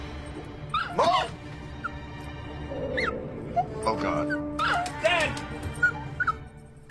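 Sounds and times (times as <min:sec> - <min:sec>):
dog yipping and whimpering: 0:00.7 - 0:02.0, 0:02.9 - 0:05.0, 0:05.7 - 0:06.5.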